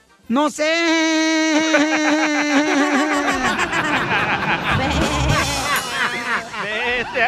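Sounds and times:
speech: 0.3s - 2.9s
voice imitating a sheep bleating: 1.1s - 3.6s, 4.7s - 5.8s
laughter: 1.6s - 7.2s.

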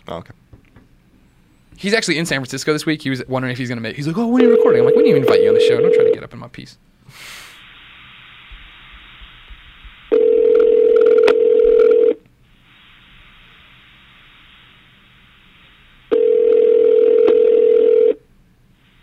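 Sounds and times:
speech: 0.0s - 0.5s, 1.8s - 7.4s
phone call ringing tone on the line: 4.4s - 6.2s, 10.1s - 12.2s, 16.1s - 18.2s
faint hiss: 6.7s - 10.4s, 12.3s - 16.4s, 18.5s - 19.0s.

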